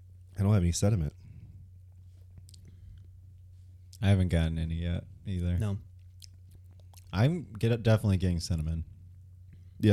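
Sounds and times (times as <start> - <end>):
speech: 0.4 - 1.2, 4.0 - 5.9, 7.1 - 8.9, 9.8 - 9.9
chewing small crunchy almond chunks from a canned drink: 6.0 - 7.2.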